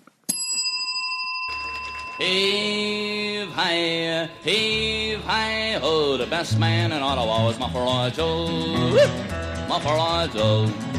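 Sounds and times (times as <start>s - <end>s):
bicycle-type closing bell ringing: 0.3s - 6.2s
speech: 2.2s - 10.9s
low rumbling noise: 2.9s - 8.4s.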